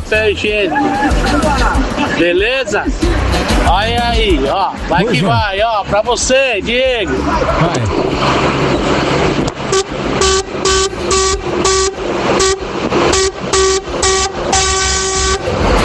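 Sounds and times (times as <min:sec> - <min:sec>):
speech: 0:00.1 - 0:10.4
laughter: 0:00.5 - 0:03.6, 0:04.8 - 0:05.6, 0:06.9 - 0:08.1
truck air horn blasts: 0:09.6 - 0:15.7.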